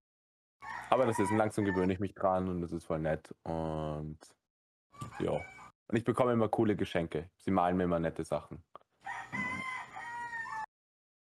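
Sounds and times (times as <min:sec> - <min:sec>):
rooster crowing cock-a-doodle-doo: 0:00.6 - 0:01.9, 0:09.0 - 0:10.7
speech: 0:00.9 - 0:04.4, 0:05.0 - 0:09.4.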